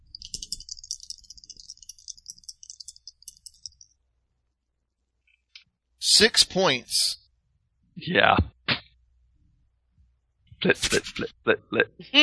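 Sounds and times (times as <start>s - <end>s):
two plastic dice clattering and rattling: 0.1s - 3.8s
speech: 6.2s - 7.2s, 8.0s - 8.5s, 10.6s - 12.2s.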